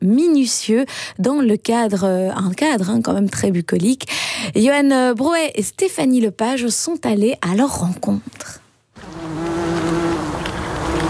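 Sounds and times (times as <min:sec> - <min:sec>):
speech: 0:00.1 - 0:09.5
insects buzzing in a lavender field during the harvest: 0:09.0 - 0:11.0.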